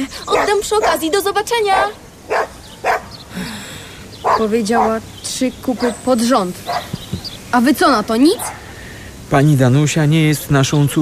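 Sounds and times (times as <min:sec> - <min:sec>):
speech: 0:00.0 - 0:03.6, 0:04.4 - 0:08.6, 0:09.3 - 0:10.9
pet dog barking: 0:00.3 - 0:01.1, 0:01.7 - 0:03.2, 0:04.2 - 0:05.0, 0:06.7 - 0:07.0, 0:08.4 - 0:08.7.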